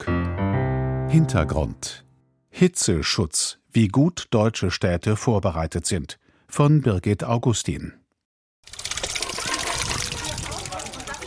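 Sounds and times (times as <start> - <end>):
speech: 1.1 - 8.0
water gushing and splashing from a children's water play at a daycare centre in Mannheim, Germany: 8.6 - 11.2.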